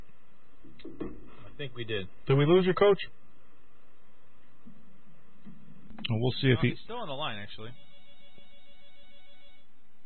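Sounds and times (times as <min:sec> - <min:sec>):
speech: 0:00.8 - 0:03.2, 0:06.1 - 0:07.9
telephone ring tone over a call line: 0:07.7 - 0:09.7.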